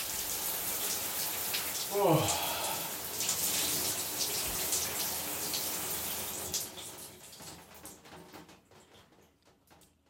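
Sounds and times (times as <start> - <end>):
cold shower water running: 0.0 - 9.9
speech: 1.9 - 2.5
person gasping a brief exclamation: 1.9 - 3.0.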